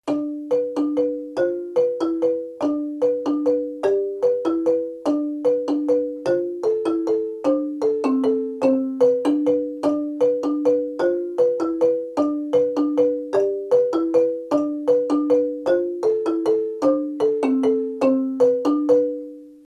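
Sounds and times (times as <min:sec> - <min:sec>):
low lead marimba playing muchongoyo: 0:00.0 - 0:19.6.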